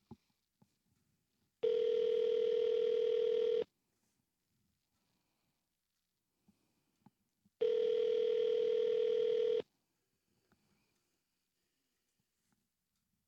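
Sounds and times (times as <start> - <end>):
ringback tone on an outgoing telephone call: 1.6 - 3.7, 7.6 - 9.6.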